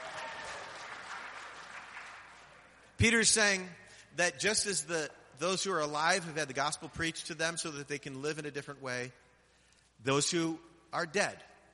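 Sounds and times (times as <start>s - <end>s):
church congregation applauding for a deacon: 0.0s - 2.8s
speech: 3.0s - 9.2s, 10.0s - 11.5s.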